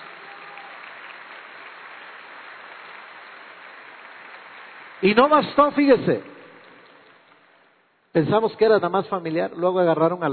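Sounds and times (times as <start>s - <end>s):
church congregation applauding during a sermon: 0.0s - 7.8s
speech: 5.0s - 6.3s, 8.2s - 10.3s.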